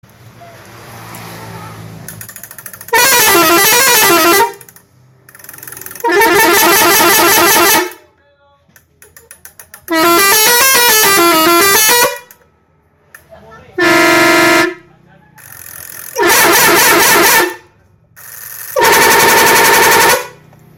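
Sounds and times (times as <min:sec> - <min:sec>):
telolet truck horn: 0:02.9 - 0:04.8, 0:05.9 - 0:08.1, 0:09.8 - 0:12.4, 0:13.8 - 0:14.9, 0:16.2 - 0:17.7, 0:18.7 - 0:20.5.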